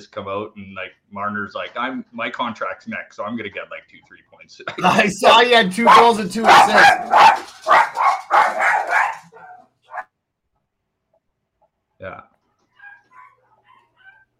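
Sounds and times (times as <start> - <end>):
speech: 0.0 - 9.1
several dogs barking excitedly as someone arrives home: 5.2 - 10.1, 12.7 - 14.3.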